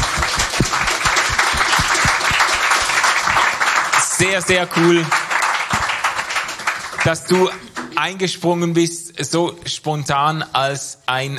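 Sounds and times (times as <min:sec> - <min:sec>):
audience applause: 0:00.0 - 0:07.9
speech: 0:04.2 - 0:05.2, 0:07.0 - 0:11.3.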